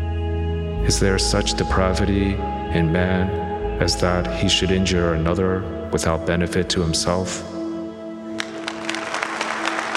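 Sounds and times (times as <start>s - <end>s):
speech: 0.8s - 7.5s
scattered applause at an awards presentation: 8.4s - 9.9s.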